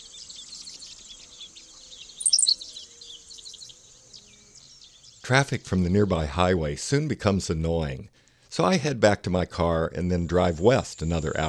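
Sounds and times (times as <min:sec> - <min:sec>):
male Henslow's Sparrow song in a tall-grass prairie: 0:00.0 - 0:06.4, 0:10.1 - 0:11.4
steady high background hiss: 0:00.0 - 0:07.2, 0:10.0 - 0:11.4
speech: 0:05.3 - 0:11.4.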